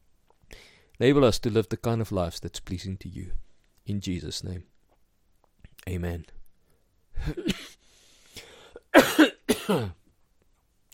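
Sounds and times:
faint breath: 0.5s - 1.0s, 7.7s - 8.8s
speech: 1.0s - 4.7s, 5.8s - 6.4s, 7.2s - 7.7s, 9.7s - 10.0s
harsh coughing: 7.2s - 7.8s, 8.8s - 10.0s.

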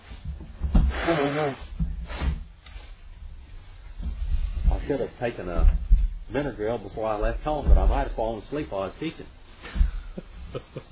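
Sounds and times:
faint room hum: 0.0s - 10.9s
nasal sniffling: 0.9s - 2.2s
speech: 1.1s - 1.7s, 4.9s - 9.8s, 10.5s - 10.9s.

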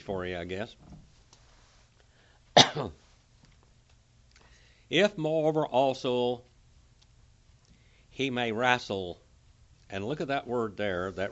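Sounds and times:
speech: 0.0s - 1.0s, 2.6s - 3.0s, 4.9s - 6.5s, 8.2s - 9.2s, 9.9s - 11.3s
single sharp cough with a rough throaty tail: 2.6s - 3.0s.

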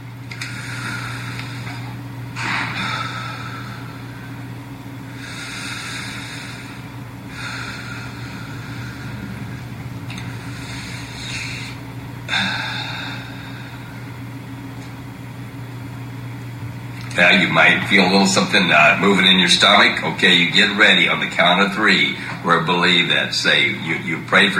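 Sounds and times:
low steady hum: 0.0s - 24.5s
people taking deep breaths at a prayer gathering: 0.4s - 14.6s, 22.2s - 22.5s
speech: 17.2s - 24.5s.

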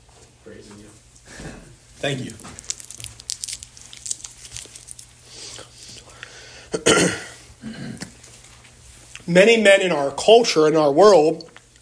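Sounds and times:
speech: 0.5s - 2.6s, 9.3s - 11.5s
small cough drop wrapper crinkling open: 2.0s - 6.1s.

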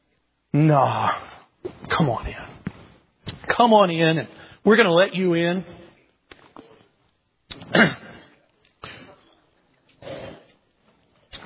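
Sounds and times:
speech: 0.6s - 2.5s, 3.5s - 5.8s, 7.7s - 8.0s
person coughing: 7.5s - 9.4s
throat clearing: 7.5s - 9.4s.

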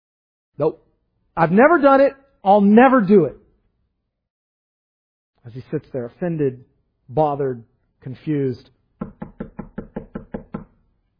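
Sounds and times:
speech: 0.6s - 0.8s, 1.4s - 3.4s, 5.4s - 9.2s
solid knocks on a wooden door: 9.0s - 10.7s.

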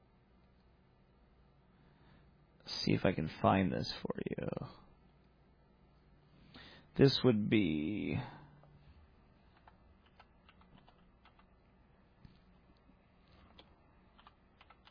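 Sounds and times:
speech: 2.8s - 4.8s, 7.0s - 8.4s
typing on a computer keyboard: 9.5s - 11.5s, 13.5s - 14.8s.

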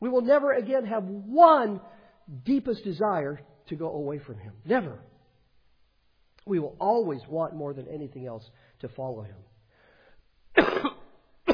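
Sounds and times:
speech: 0.1s - 5.1s, 6.4s - 9.5s
loud rasping cough: 10.6s - 11.5s.

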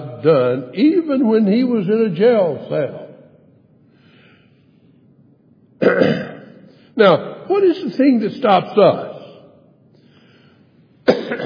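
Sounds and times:
speech: 0.2s - 3.0s, 7.0s - 9.1s
single harsh cough: 5.8s - 6.6s, 11.0s - 11.4s.

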